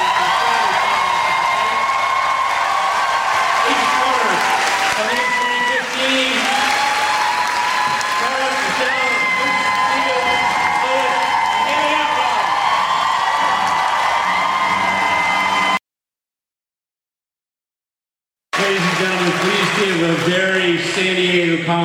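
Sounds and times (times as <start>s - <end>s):
cheers and whoops: 0.0s - 15.8s
large crowd applauding: 0.0s - 15.8s, 18.5s - 21.7s.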